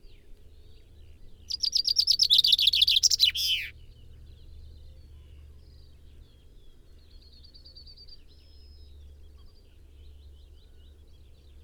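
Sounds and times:
common chaffinch Fringilla coelebs singing: 1.4s - 3.7s.

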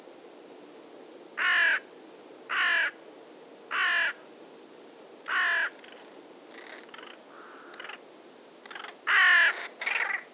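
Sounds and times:
carrion crow Corvus corone cawing: 1.4s - 1.9s, 2.5s - 3.0s, 3.7s - 4.2s, 5.3s - 5.8s, 6.6s - 8.0s, 8.7s - 10.3s.

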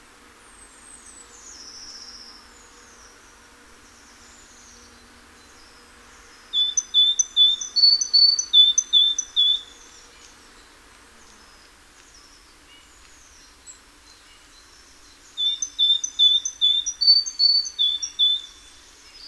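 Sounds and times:
great tit Parus major singing: 6.2s - 9.9s, 14.1s - 19.2s.

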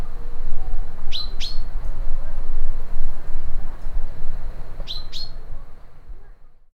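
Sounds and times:
constant low-frequency background noise: 0.0s - 6.7s
common chaffinch Fringilla coelebs pink calls: 1.1s - 1.7s.

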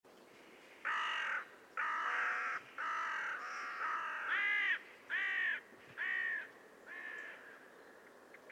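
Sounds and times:
carrion crow Corvus corone cawing: 0.8s - 7.6s.

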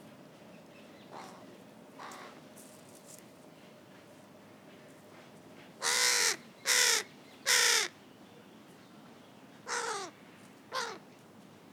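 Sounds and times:
carrion crow Corvus corone cawing: 5.8s - 7.9s, 9.7s - 10.1s, 10.8s - 11.0s.

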